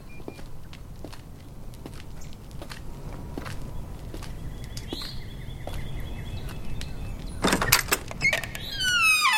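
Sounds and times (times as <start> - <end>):
low rumble: 0.0 - 8.9
squeaky door hinge creaking: 7.2 - 9.3
knocks and rattles: 7.4 - 9.0.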